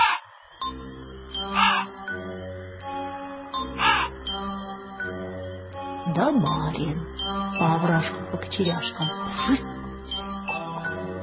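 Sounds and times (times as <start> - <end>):
crows cawing: 0.0 - 0.3, 1.5 - 2.0, 3.8 - 4.2
low droning background with faint tonal layers: 0.6 - 11.2
speech: 6.1 - 9.7.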